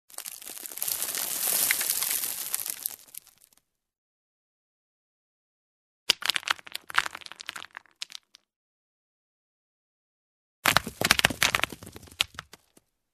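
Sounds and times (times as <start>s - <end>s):
small stones pouring down: 0.1s - 3.6s, 6.1s - 8.5s, 10.7s - 12.8s.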